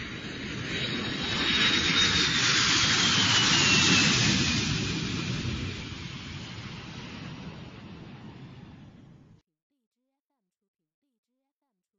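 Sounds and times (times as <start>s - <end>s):
jet airplane engine roaring overhead: 0.0s - 9.4s.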